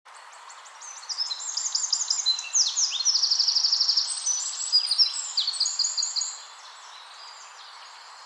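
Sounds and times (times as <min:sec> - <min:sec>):
steady background hiss: 0:00.1 - 0:08.2
Eurasian wren Troglodytes troglodytes singing: 0:00.3 - 0:08.2.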